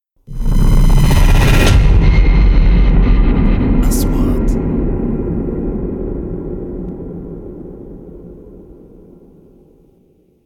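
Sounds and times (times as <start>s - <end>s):
3D trailer sound effects: 0.3s - 8.0s.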